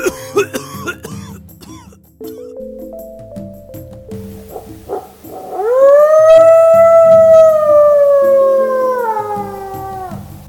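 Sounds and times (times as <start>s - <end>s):
barking deer frightened dog-like wail: 4.4s - 10.4s.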